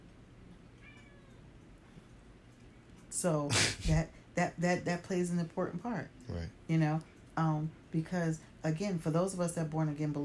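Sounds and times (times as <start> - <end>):
cat meowing: 0.8 - 1.5
speech: 3.1 - 10.2.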